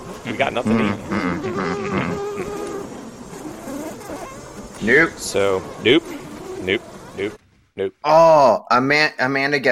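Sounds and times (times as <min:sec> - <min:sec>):
swarm of hornets buzzing while attacking a beehive: 0:00.0 - 0:07.4
speech: 0:00.3 - 0:02.7, 0:04.8 - 0:09.7.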